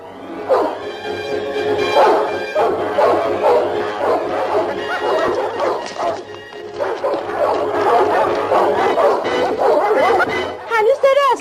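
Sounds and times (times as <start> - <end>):
several dogs barking excitedly: 0.4 - 0.9, 1.8 - 11.3
dogs whining high yips: 1.8 - 10.4.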